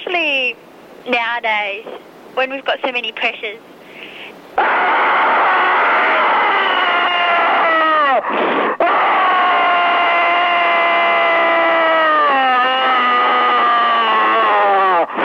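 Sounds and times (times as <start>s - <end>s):
speech: 0.2s - 3.7s
gasps for breath: 3.8s - 4.4s
caller screaming over a tinny telephone line: 4.6s - 15.1s.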